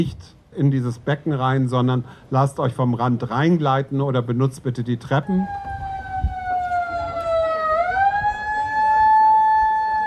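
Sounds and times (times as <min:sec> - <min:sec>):
speech: 0:00.0 - 0:05.7
siren wailing at an outdoor pool: 0:05.2 - 0:10.0.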